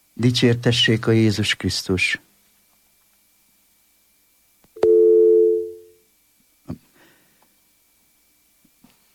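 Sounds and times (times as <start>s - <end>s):
speech: 0.2s - 2.3s
telephone line tone during an incoming call: 4.8s - 6.0s.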